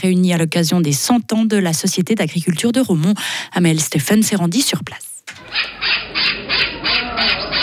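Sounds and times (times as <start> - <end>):
speech: 0.0 - 7.6
parrot squawking at a cantonal poultry exhibition: 5.4 - 7.6.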